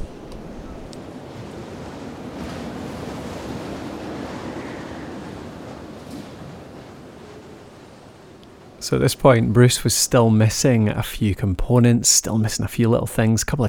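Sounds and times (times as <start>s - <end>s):
wind blowing over a tent being pitched on open ground at a bike race: 0.0s - 8.8s
speech: 8.8s - 13.6s.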